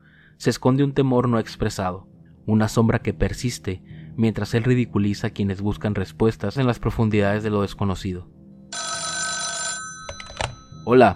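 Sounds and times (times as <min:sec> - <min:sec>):
speech: 0:00.4 - 0:08.4, 0:10.9 - 0:11.1
telephone bell ringing: 0:08.7 - 0:11.1.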